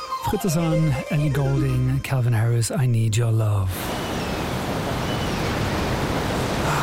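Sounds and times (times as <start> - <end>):
speech: 0.3 - 4.0
ocean surf roaring: 3.7 - 6.8.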